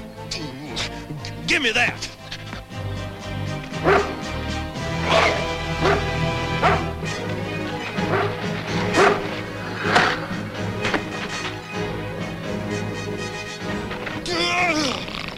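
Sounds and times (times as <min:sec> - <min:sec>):
steady low drone: 0:00.0 - 0:15.3
speech: 0:01.5 - 0:02.2
dog barking and yipping: 0:03.8 - 0:10.2.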